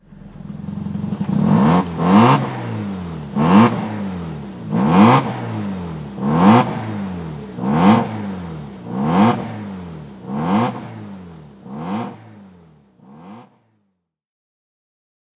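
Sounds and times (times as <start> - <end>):
engine exhaust note: 0.0 - 13.6.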